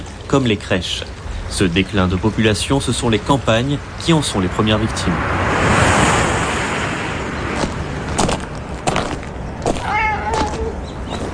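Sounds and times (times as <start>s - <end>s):
steady wash of outdoor noise: 0.0s - 11.3s
speech: 0.3s - 5.4s
stray cat meowing in rural South Korea: 9.8s - 10.8s.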